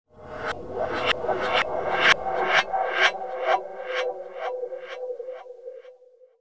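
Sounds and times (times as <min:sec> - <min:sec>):
eerie horror film sound effect: 0:00.1 - 0:06.1.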